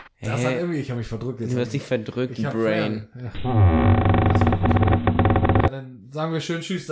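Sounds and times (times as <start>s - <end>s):
speech: 0.3s - 4.8s, 5.7s - 6.9s
high squeak of door hinges: 3.4s - 5.7s.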